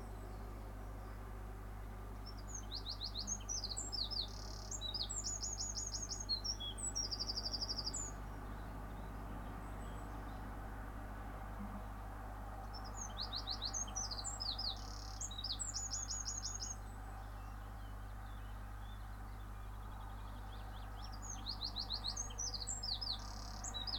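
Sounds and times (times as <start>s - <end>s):
steady low rumble of cars: 0.0s - 23.9s
bird singing sharp chips and rapid trills in the morning: 2.3s - 9.1s, 12.8s - 16.8s, 20.6s - 23.9s.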